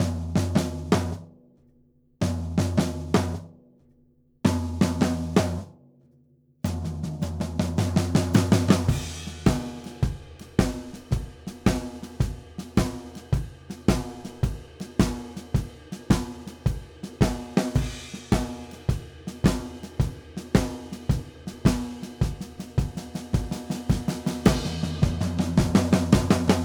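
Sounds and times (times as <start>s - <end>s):
blues drum breakdown: 0.0s - 1.2s, 2.2s - 3.5s, 4.5s - 5.7s, 6.7s - 26.6s.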